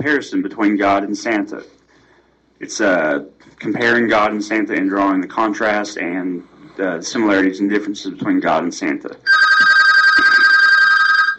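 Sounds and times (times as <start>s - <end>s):
speech: 0.0s - 1.8s, 2.6s - 9.7s
telephone ringing with an electronic trill: 9.3s - 11.3s.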